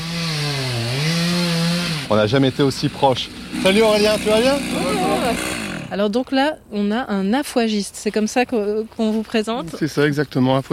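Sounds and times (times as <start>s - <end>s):
chainsaw running and cutting: 0.0s - 6.0s
speech: 2.1s - 10.7s.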